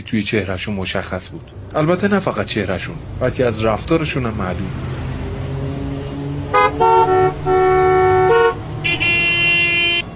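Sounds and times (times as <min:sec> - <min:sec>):
low rumble of heavy traffic in Tehran Iran: 0:00.0 - 0:10.1
speech: 0:00.1 - 0:05.0
car horns honking on a busy street in Tehran Iran: 0:06.5 - 0:10.1.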